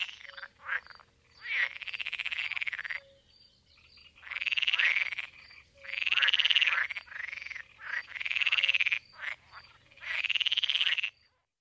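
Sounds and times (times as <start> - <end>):
pool frog calling with pulsed rattling bursts: 0.0 - 3.1, 3.8 - 11.3.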